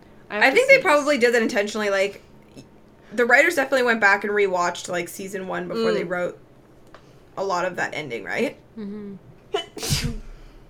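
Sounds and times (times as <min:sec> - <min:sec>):
speech: 0:00.3 - 0:02.3, 0:03.1 - 0:06.4, 0:07.4 - 0:10.1
person sneezing: 0:09.6 - 0:10.4.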